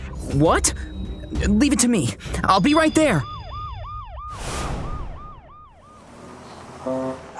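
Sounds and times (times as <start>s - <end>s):
speech: 0.4s - 3.3s
police car siren whooping: 2.8s - 6.4s
vehicle roaring past: 4.3s - 6.9s.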